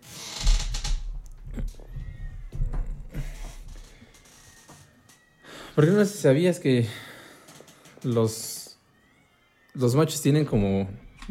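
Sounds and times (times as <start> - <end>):
two cats yowling and caterwauling, fighting or mating: 1.5 - 5.7, 8.8 - 9.8, 10.5 - 11.2
speech: 5.8 - 7.0, 8.0 - 8.5, 9.8 - 11.2.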